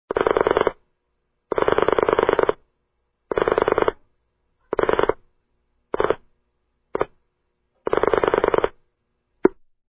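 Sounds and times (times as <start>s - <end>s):
telephone dialing pulses: 0.1s - 0.8s, 1.5s - 2.6s, 3.3s - 4.0s, 4.7s - 5.2s, 6.0s - 6.2s, 7.9s - 8.8s.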